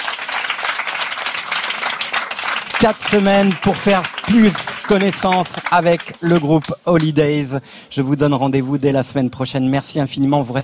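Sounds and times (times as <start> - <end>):
audience applause: 0.0 - 7.2
speech: 2.8 - 10.6.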